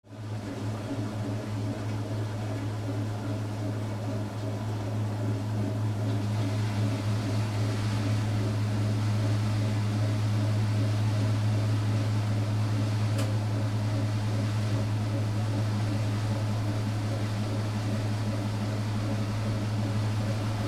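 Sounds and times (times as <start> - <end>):
distant washing machine spinning: 0.1 - 20.6.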